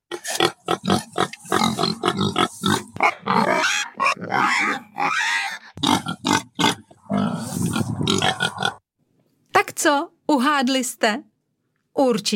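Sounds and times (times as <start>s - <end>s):
domestic pig grunting and snorting: 0.1s - 8.8s
speech: 10.6s - 11.3s, 12.0s - 12.3s.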